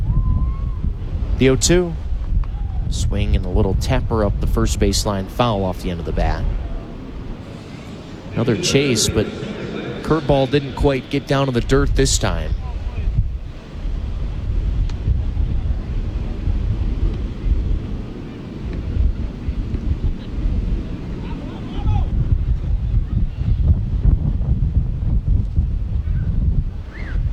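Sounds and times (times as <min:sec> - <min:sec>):
strong wind buffeting a microphone on a fourth floor: 0:00.0 - 0:27.3
speech: 0:01.4 - 0:02.0, 0:02.9 - 0:06.6, 0:08.4 - 0:09.5, 0:10.1 - 0:12.6
laughter: 0:06.8 - 0:12.5.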